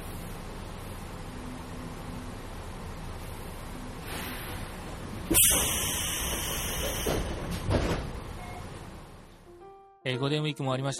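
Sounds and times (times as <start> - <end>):
steady hum of local train: 0.0 - 9.6
local train doors opening at terminal platform: 4.0 - 9.0
speech: 10.0 - 10.9.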